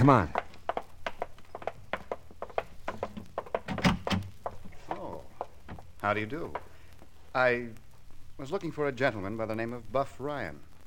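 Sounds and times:
speech: 0.0s - 0.4s, 6.0s - 6.6s, 7.4s - 7.8s, 8.4s - 10.7s
light quick footsteps crossing a room: 0.0s - 7.2s
front door opening with a clunk and rattle: 0.4s - 4.9s.

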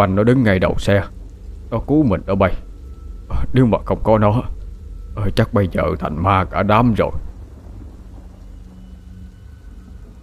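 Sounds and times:
speech: 0.0s - 2.7s, 3.3s - 4.6s, 5.2s - 7.3s
heavy rain pouring down over a small rural district: 0.0s - 10.2s.

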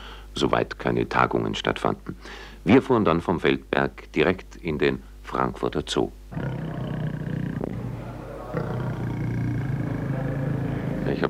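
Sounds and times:
speech: 0.4s - 7.2s, 11.1s - 11.2s
tigers growling at a zoo: 6.3s - 11.2s.

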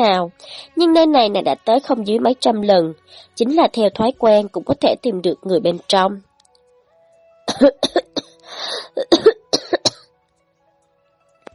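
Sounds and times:
speech: 0.0s - 6.3s, 7.5s - 9.4s
raspy breath: 0.4s - 0.7s, 3.0s - 3.4s, 8.3s - 9.0s
hoarse painful coughing: 7.5s - 10.1s.

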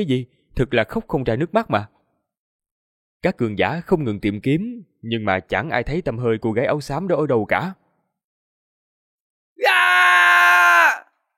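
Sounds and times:
speech: 0.0s - 1.9s, 3.2s - 7.8s
aged master shouting loudly: 9.6s - 11.1s.

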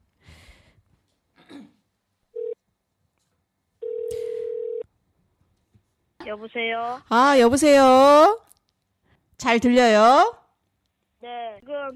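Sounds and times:
telephone ringing tones as a call is placed: 2.4s - 2.6s, 3.8s - 4.8s
speech: 6.3s - 8.4s, 9.4s - 10.4s.

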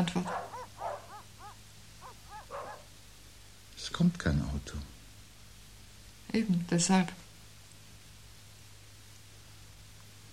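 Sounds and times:
dogs barking: 0.0s - 3.0s
low steady hum: 0.0s - 10.3s
speech: 4.0s - 5.0s, 6.3s - 7.2s.

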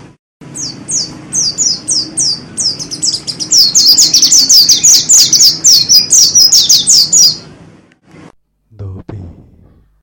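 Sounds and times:
Oriental magpie-robin song: 0.5s - 7.4s.

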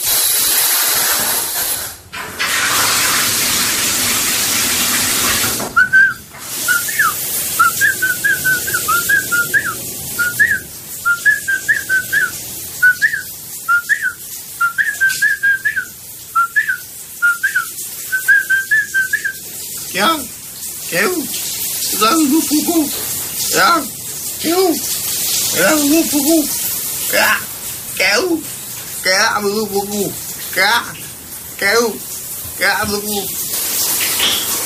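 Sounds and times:
shower spray: 0.0s - 34.6s
man whistling a chant-like tune in the shower: 5.8s - 19.4s.

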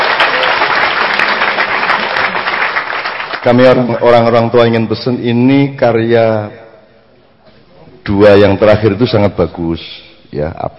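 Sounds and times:
audience applause: 0.0s - 3.6s
speech: 3.4s - 6.6s, 8.0s - 10.7s.

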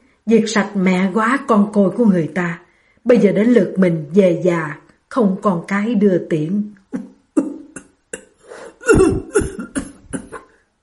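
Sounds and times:
speech: 0.2s - 7.1s
old man having a violent coughing fit: 7.4s - 10.5s.

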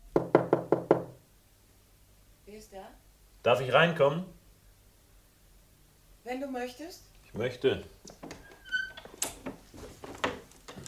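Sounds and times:
knocking on a door along a corridor: 0.1s - 1.2s
speech: 2.6s - 4.4s, 6.2s - 8.4s.

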